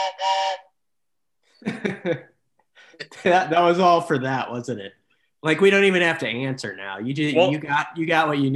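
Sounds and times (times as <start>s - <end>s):
train whistle blast: 0.0s - 0.7s
speech: 1.6s - 2.3s, 3.0s - 8.5s.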